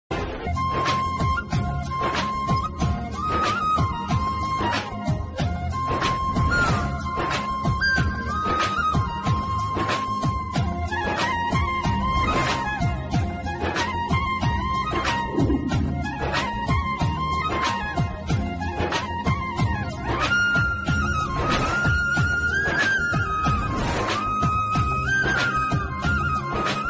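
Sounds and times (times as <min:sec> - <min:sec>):
serial flute background music: 0:00.1 - 0:26.8.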